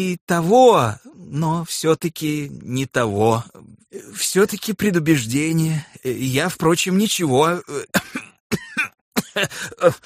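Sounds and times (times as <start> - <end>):
speech: 0.0 - 8.7, 9.4 - 10.0
person coughing in harsh, partly voiced bursts: 7.7 - 10.0.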